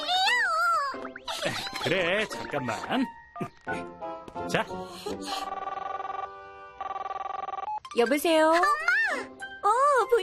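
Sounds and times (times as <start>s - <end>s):
speech: 1.4s - 5.6s, 8.0s - 10.2s
telephone ringback tone through an earpiece during an outgoing call: 5.3s - 8.0s.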